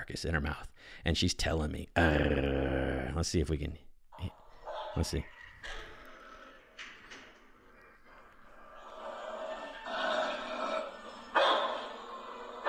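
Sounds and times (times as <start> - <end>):
speech: 0.1 - 4.4, 5.0 - 5.9
several dogs barking: 4.3 - 6.7, 7.8 - 12.6
dog growling low: 4.4 - 12.6.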